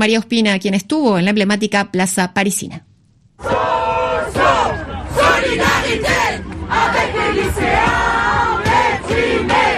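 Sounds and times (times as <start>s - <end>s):
speech: 0.0s - 3.7s
large crowd of university students chanting protest slogans: 3.4s - 9.7s.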